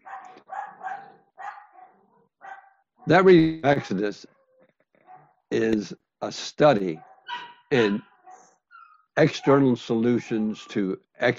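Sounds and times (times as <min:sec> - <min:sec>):
several dogs barking and yipping: 0:00.0 - 0:04.1, 0:07.0 - 0:10.7
speech: 0:03.1 - 0:04.4, 0:05.5 - 0:08.1, 0:09.2 - 0:11.3.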